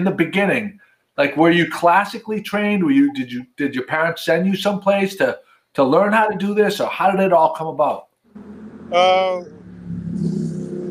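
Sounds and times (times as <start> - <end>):
speech: 0.0 - 9.6
motorcycle engine revving outside: 8.3 - 10.9.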